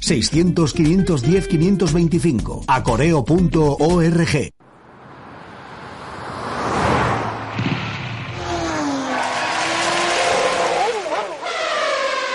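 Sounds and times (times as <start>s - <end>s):
speech: 0.1s - 4.6s
car engines revving: 4.6s - 12.3s.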